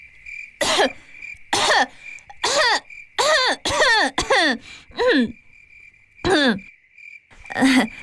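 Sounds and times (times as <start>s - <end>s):
person coughing loudly: 0.6s - 1.0s, 1.6s - 5.4s.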